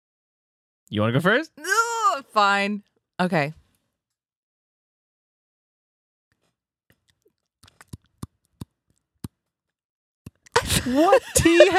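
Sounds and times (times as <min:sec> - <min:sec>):
speech: 0:00.9 - 0:03.6, 0:10.9 - 0:11.7
teeth chomping to imitate clinking ice cubes: 0:06.9 - 0:09.4, 0:10.3 - 0:10.6
laughter: 0:10.6 - 0:11.7.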